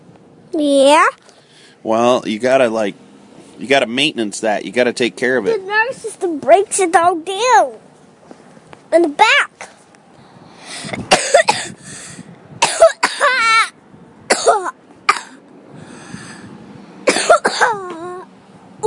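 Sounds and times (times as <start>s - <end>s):
speech: 0.5s - 3.0s, 3.6s - 7.8s, 8.9s - 9.7s
strained wheezing intake of breath: 10.2s - 11.1s, 11.7s - 12.3s, 15.7s - 16.6s
person coughing hard: 11.1s - 11.8s, 12.6s - 13.4s, 14.3s - 15.4s, 17.1s - 17.9s.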